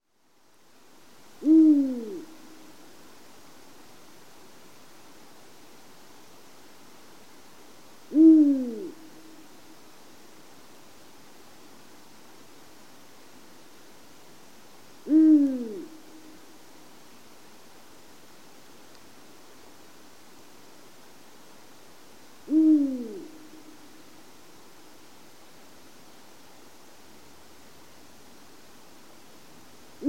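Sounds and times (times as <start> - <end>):
Eurasian eagle-owl calling: 1.4 - 2.3, 8.1 - 9.0, 15.1 - 16.0, 22.5 - 23.4.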